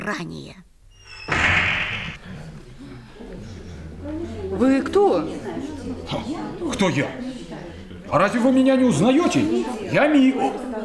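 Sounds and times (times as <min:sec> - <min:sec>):
speech: 0:00.0 - 0:00.7, 0:04.0 - 0:10.8
school classroom door flung open slamming into wall: 0:01.1 - 0:02.2.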